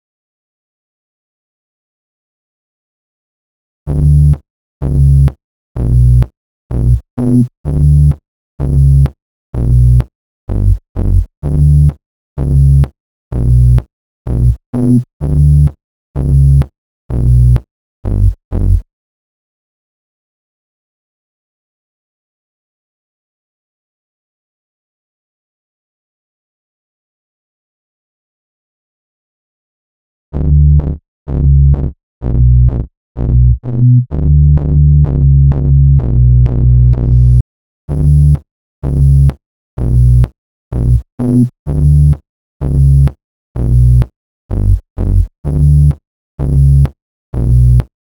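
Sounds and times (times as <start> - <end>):
bass in B minor: 3.9 - 18.8, 30.3 - 47.9.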